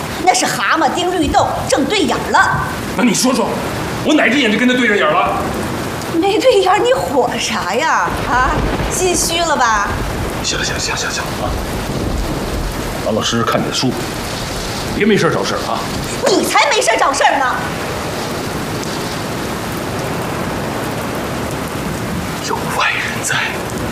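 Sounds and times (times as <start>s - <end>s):
heavy rain: 0.0s - 23.9s
thunder rumbling and cracking: 0.0s - 23.9s.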